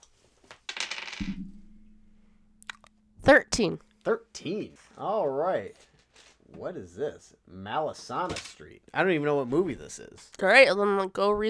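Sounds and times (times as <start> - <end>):
dice clattering onto a hard surface: 0.4 - 1.4, 8.3 - 8.6
low hum: 1.2 - 4.1
speech: 3.3 - 5.9, 6.5 - 11.4.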